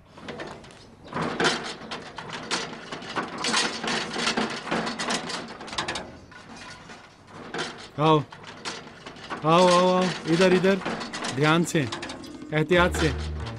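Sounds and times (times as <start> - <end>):
rattling, scraping and knocking of something being carried in: 0.1 - 13.5
speech: 8.0 - 8.4, 9.4 - 13.3
door being opened while something is carried in: 10.3 - 13.5.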